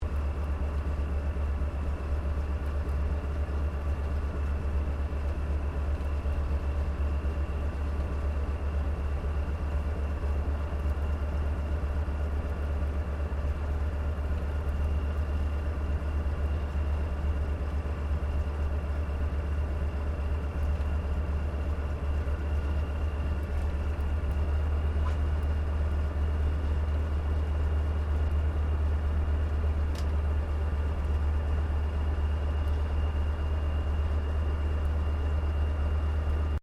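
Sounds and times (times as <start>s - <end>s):
CAC CA-25 Winjeel fighter trainer idling heard from interior: 0.0s - 36.6s.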